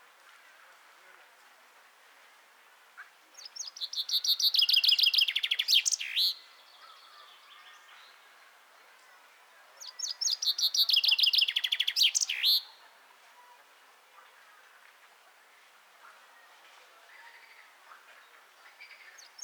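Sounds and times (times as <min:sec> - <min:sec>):
common chaffinch Fringilla coelebs song: 0:03.4 - 0:06.4, 0:09.8 - 0:12.7, 0:18.9 - 0:19.4.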